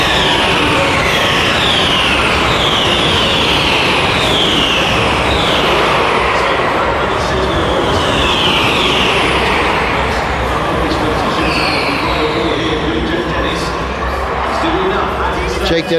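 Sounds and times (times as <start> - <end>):
faint talk: 0.0 - 15.9
racing cars roaring along a circuit: 0.0 - 15.9.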